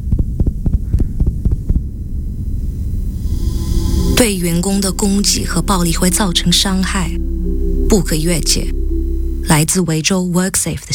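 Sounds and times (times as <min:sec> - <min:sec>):
fast pounding heartbeat of a threatened nurse: 0:00.0 - 0:02.5
low steady rumbling hum: 0:00.0 - 0:10.9
speech: 0:04.2 - 0:07.3, 0:07.9 - 0:08.8, 0:09.4 - 0:10.9.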